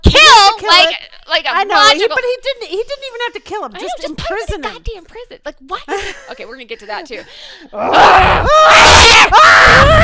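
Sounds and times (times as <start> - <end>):
speech: 1.5 - 10.0
person screaming in frustration: 7.8 - 10.0.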